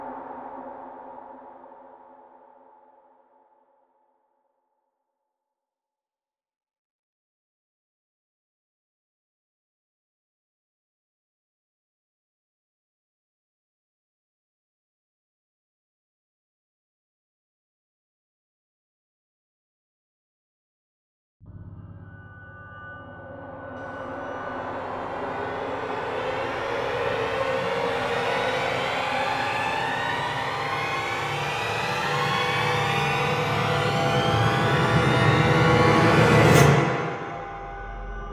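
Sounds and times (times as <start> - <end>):
instruments: 23.1 - 38.2.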